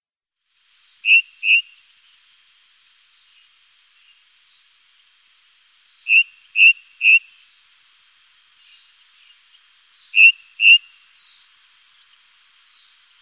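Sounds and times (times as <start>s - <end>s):
ring ouzel calls: 6.0s - 7.5s, 8.8s - 11.4s.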